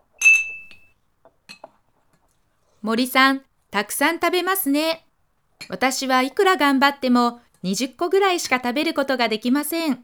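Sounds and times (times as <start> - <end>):
glasses clinking in a toast: 0.2 - 0.9
speech: 2.8 - 5.0, 5.6 - 10.0.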